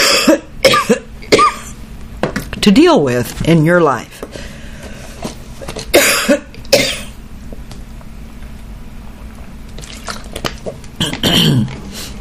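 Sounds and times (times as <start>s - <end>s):
person coughing harshly: 0.0s - 1.8s, 5.9s - 7.2s, 11.0s - 11.8s
speech: 2.6s - 4.2s.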